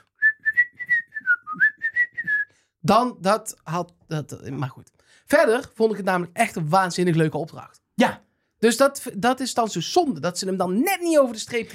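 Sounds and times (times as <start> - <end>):
person whistling a Mexican-style western melody: 0.0 - 2.6
speech: 2.8 - 11.7.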